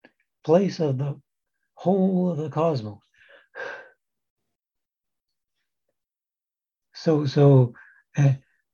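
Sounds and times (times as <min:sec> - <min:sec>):
speech: 0:00.4 - 0:01.2, 0:01.8 - 0:03.0, 0:07.0 - 0:08.4
deep exhalation: 0:03.1 - 0:04.0.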